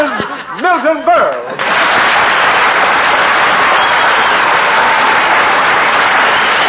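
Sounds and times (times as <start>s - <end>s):
laughter: 0.0s - 1.8s
speech: 0.6s - 1.9s
large studio audience applauding: 1.4s - 6.6s.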